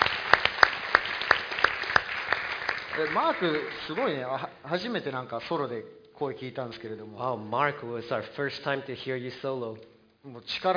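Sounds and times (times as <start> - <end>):
audience applause: 0.0 - 4.3
speech: 3.0 - 10.7.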